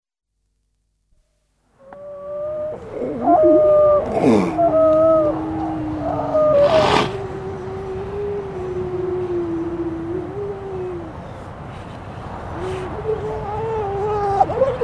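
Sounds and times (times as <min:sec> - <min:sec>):
grey seal howling: 0:01.8 - 0:11.3, 0:12.5 - 0:14.8.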